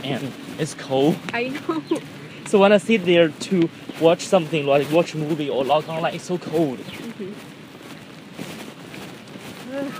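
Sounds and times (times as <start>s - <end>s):
steady hissing rain: 0.0s - 7.4s
speech: 0.0s - 7.6s
faint voice murmuring: 9.6s - 9.9s.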